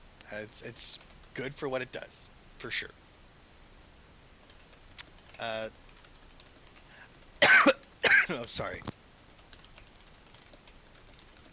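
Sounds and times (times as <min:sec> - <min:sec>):
speech: 0:00.3 - 0:03.0, 0:05.4 - 0:05.8, 0:08.3 - 0:08.9
typing on a computer keyboard: 0:00.9 - 0:01.5, 0:04.4 - 0:11.5.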